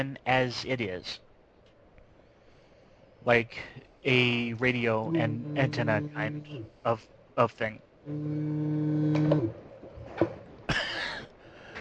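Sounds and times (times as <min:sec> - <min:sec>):
speech: 0:00.0 - 0:01.2, 0:03.2 - 0:09.6
cow mooing: 0:05.0 - 0:06.7, 0:08.1 - 0:09.6.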